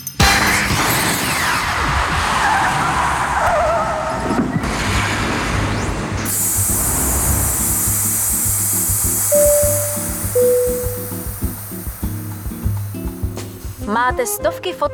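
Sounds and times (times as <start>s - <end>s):
time machine car skidding with loud tire screech: 0.3s - 7.6s
sharp high hiss: 6.3s - 13.9s
brief electronic beeps and pulsing tones: 9.3s - 11.6s
speech: 14.2s - 14.9s.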